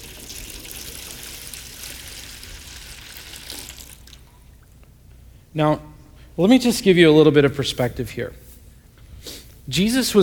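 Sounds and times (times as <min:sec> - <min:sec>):
water pouring from a pitcher into a basin: 0:00.0 - 0:04.3
speech: 0:05.5 - 0:08.4, 0:09.7 - 0:10.2.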